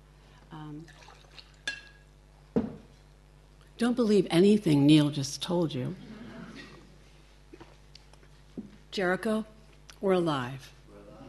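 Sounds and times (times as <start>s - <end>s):
speech: 0.7s - 1.2s, 3.8s - 6.1s, 9.0s - 10.8s
water pouring into a glass: 0.8s - 2.0s
firmer knock of a glass set down: 2.6s - 2.9s.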